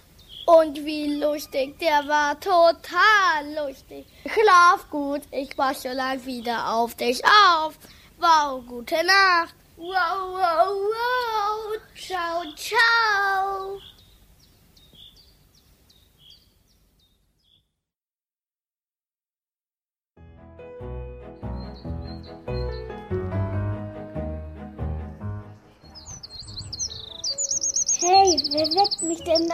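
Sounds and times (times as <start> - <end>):
bird chirping in quick high tweets: 0.0 - 2.4, 12.0 - 17.8, 21.4 - 23.1, 25.1 - 29.5
speech: 0.5 - 13.9, 28.0 - 29.5.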